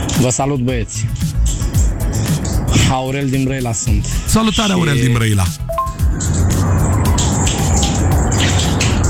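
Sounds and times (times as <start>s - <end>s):
speech: 0.2s - 1.6s, 2.8s - 6.4s
running water from a shower: 6.9s - 9.0s.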